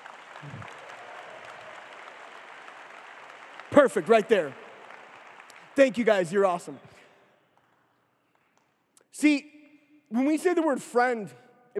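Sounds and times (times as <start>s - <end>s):
room full of people applauding: 0.0s - 6.8s
speech: 3.8s - 4.6s, 5.8s - 7.0s, 9.2s - 9.5s, 10.1s - 11.7s.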